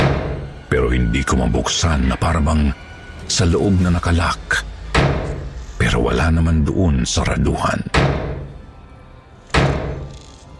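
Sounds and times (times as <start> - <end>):
heavy bang on a metal truck door: 0.0 - 0.6, 4.9 - 5.6, 7.9 - 8.6, 9.6 - 10.1
speech: 0.9 - 4.7, 5.9 - 8.2.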